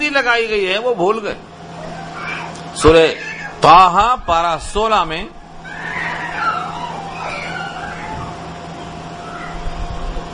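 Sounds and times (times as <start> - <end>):
steady low hum: 0.0 - 10.3
speech: 0.1 - 1.5, 2.8 - 5.4
cat meowing: 1.8 - 3.6, 5.6 - 8.4.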